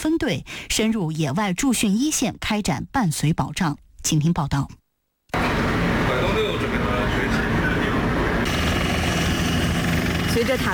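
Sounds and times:
speech: 0.0s - 4.8s, 10.3s - 10.7s
military helicopters taking off with engines and rotors roaring: 5.4s - 10.7s.

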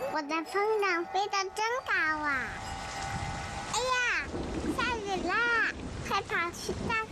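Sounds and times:
speech: 0.2s - 2.7s
steady rain falling: 1.9s - 7.1s.

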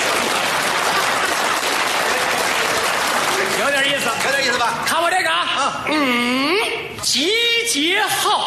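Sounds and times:
audience applause: 0.0s - 4.6s
speech: 4.5s - 8.4s.

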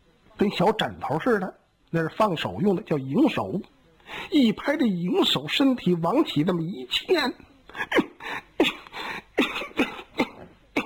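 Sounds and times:
speech: 0.4s - 8.0s
storyteller voicing a coughing fit: 7.8s - 10.8s.

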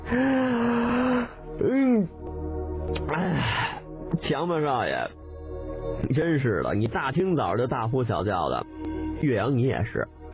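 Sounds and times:
big yawn: 0.0s - 2.1s, 3.0s - 3.8s
speech: 0.1s - 0.6s, 4.3s - 5.2s, 6.0s - 10.3s.

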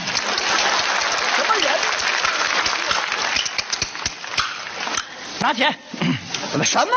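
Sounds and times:
sharp individual claps: 0.0s - 5.1s
audience applause: 0.0s - 5.4s
speech: 5.4s - 6.9s.

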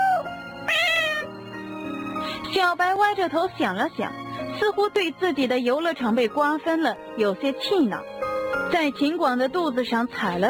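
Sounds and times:
cat meowing: 0.1s - 1.3s
speech: 2.5s - 10.4s.

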